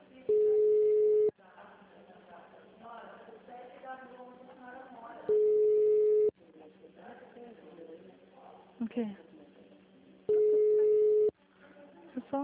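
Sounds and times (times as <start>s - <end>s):
telephone ringback tone while waiting for an answer: 0.3s - 1.3s, 5.3s - 6.3s, 10.3s - 11.3s
speech: 9.0s - 9.2s.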